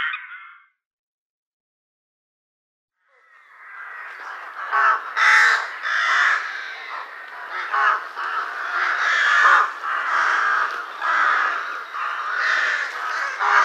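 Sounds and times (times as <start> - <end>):
rooks cawing in a busy overlapping chorus: 3.1 - 13.6.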